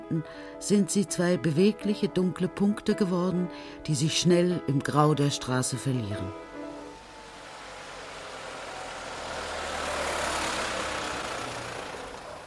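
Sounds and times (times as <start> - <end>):
speech: 0.1 - 6.5
small truck engine rumbling as it drives off along a street: 6.2 - 12.4.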